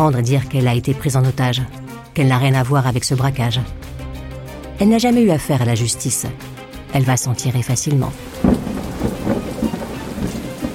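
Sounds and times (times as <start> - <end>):
speech: 0.0 - 3.9, 4.8 - 9.4
deep rolling thunder rumbling: 8.1 - 10.7
steady rain hissing: 8.1 - 10.7.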